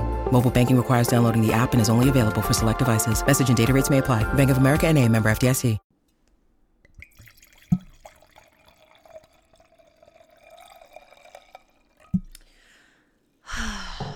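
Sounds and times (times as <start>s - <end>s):
speech: 0.3s - 5.8s
zero-sugar zero-carb Basque drink pouring into a glass: 6.8s - 12.7s.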